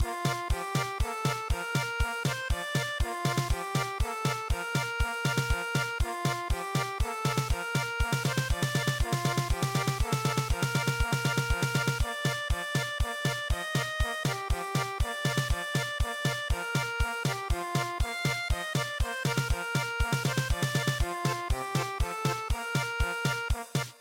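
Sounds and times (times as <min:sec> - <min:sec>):
traditional German polka music: 0:00.0 - 0:23.9.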